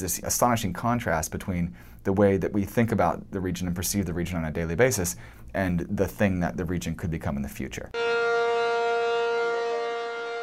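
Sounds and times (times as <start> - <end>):
speech: 0.0 - 8.6
refinery emergency siren wailing: 8.0 - 10.4.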